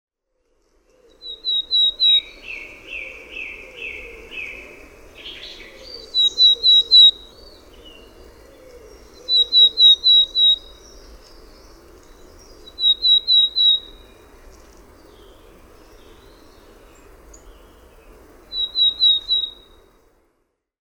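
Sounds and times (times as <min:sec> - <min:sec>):
willow tit calling: 0:01.2 - 0:04.6, 0:05.3 - 0:07.4, 0:08.6 - 0:10.8, 0:12.7 - 0:14.0, 0:18.5 - 0:19.8.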